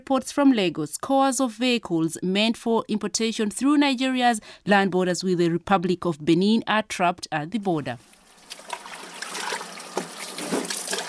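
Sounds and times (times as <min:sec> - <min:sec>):
speech: 0:00.1 - 0:08.2
water sprayed on imported cars being washed at a car shop in Lagos Nigeria: 0:08.1 - 0:11.0.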